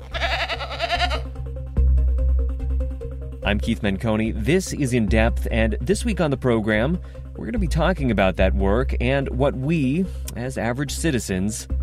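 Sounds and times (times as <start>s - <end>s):
goat bleating: 0.0s - 1.4s
music with low bass pulse: 0.8s - 11.8s
speech: 3.5s - 11.8s.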